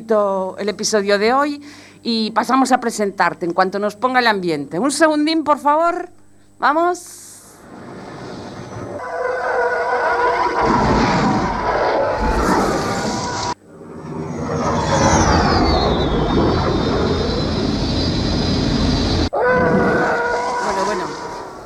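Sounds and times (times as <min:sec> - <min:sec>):
speech: 0:00.1 - 0:07.8
spaceship taking off: 0:07.6 - 0:21.6
descending whistling tone: 0:08.4 - 0:21.4.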